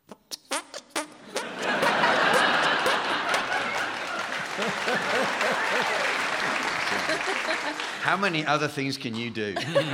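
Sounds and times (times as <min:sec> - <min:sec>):
crowd laughing: 0:01.2 - 0:08.1, 0:09.4 - 0:09.9
crowd applauding: 0:01.6 - 0:09.3
sharp single hand claps: 0:03.3 - 0:09.3
speech: 0:08.1 - 0:09.9.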